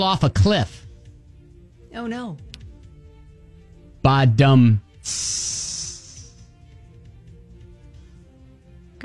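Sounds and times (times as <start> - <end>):
speech: 0.0 - 0.8, 1.9 - 2.5, 4.0 - 5.8
person making a drawn-out vocal hiss: 5.0 - 6.5.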